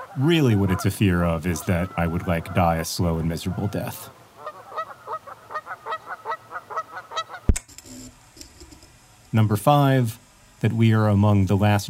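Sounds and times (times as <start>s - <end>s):
geese honking: 0.0s - 7.5s
faint hiss: 0.0s - 11.8s
speech: 0.2s - 4.2s, 9.3s - 11.8s.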